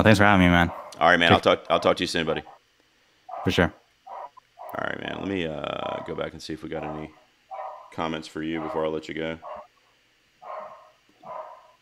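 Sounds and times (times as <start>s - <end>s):
speech: 0.0s - 2.5s, 3.4s - 3.8s, 4.8s - 7.2s, 8.0s - 9.6s
dog barking: 0.7s - 1.1s, 3.3s - 4.8s, 5.8s - 9.7s, 10.4s - 11.8s.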